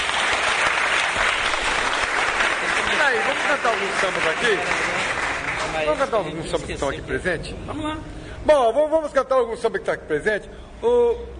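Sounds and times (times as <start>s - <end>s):
audience applause at a live poetry and samba gathering: 0.0s - 6.3s
speech: 3.5s - 5.0s, 5.7s - 11.3s.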